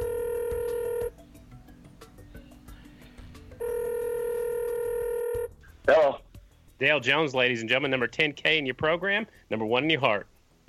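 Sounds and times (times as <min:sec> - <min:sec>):
telephone dial tone: 0:00.0 - 0:01.1, 0:03.6 - 0:05.5
speech: 0:06.8 - 0:10.3.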